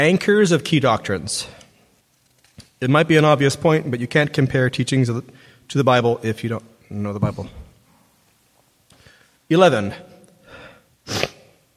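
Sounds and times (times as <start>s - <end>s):
speech: 0.0s - 1.6s, 2.8s - 7.6s, 9.5s - 10.1s, 11.1s - 11.3s
person sneezing from allergies: 11.0s - 11.6s.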